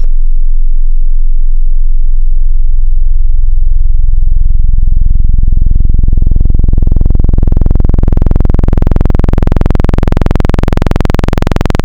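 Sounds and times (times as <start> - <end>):
sub bass sine wavetable tone: 0.0 - 11.8.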